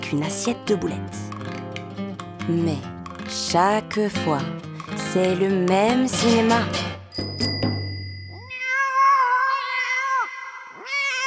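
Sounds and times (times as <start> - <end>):
speech: 0.1 - 1.2, 2.4 - 7.5
bright bell-like clicks: 7.1 - 8.6
cat yowling loudly in a long wavering wail: 8.5 - 11.2.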